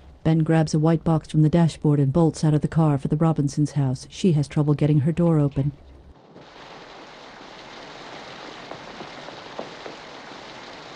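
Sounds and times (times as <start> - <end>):
speech: 0.3 - 5.9
rain falling steadily: 6.1 - 10.9.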